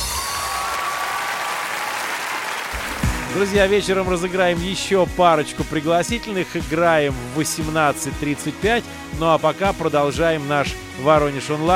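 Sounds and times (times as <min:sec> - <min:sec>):
crowd applauding: 0:00.0 - 0:04.3
speech: 0:03.4 - 0:11.7.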